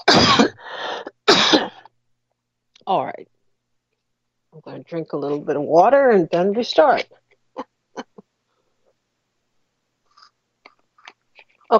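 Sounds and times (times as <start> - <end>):
adult man coughing harshly: 0.0 - 0.6, 1.3 - 1.8
speech: 2.9 - 3.4, 4.5 - 7.7.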